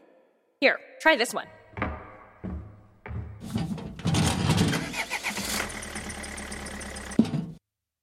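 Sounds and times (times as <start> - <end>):
speech: 0.6 - 1.6
internal combustion engine cranking, starting and revving: 4.2 - 7.3.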